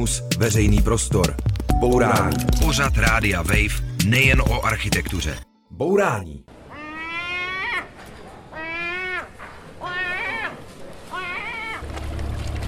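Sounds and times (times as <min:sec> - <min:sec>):
speech: 0:00.0 - 0:06.6
seagulls calling with wailing cries: 0:06.6 - 0:11.9.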